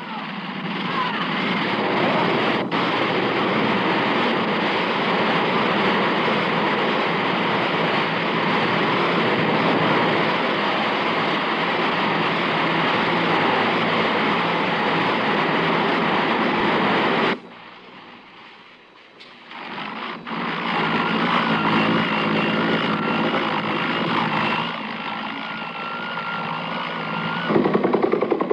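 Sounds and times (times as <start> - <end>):
large military helicopters flying: 0.0 - 28.5.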